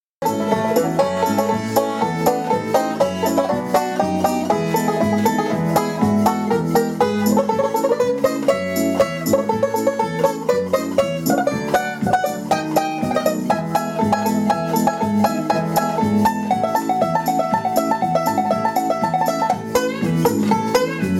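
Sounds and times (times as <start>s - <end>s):
banjo playing triplets: 0.2s - 21.1s.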